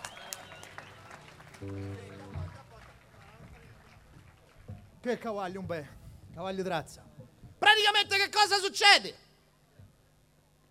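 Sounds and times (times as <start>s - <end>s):
audience clapping: 0.0s - 5.6s
speech: 1.6s - 2.1s, 5.0s - 7.1s, 7.8s - 9.2s.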